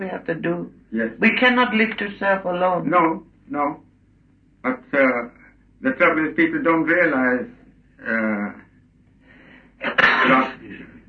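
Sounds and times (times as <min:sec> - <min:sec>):
speech: 0:00.0 - 0:03.9, 0:04.6 - 0:08.6, 0:09.8 - 0:10.9
person sneezing: 0:09.8 - 0:10.8.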